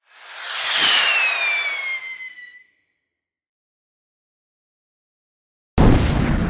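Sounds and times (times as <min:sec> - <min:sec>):
firework rocket whistling and hissing: 0:00.0 - 0:02.8
firework explosion crackling: 0:00.1 - 0:02.5.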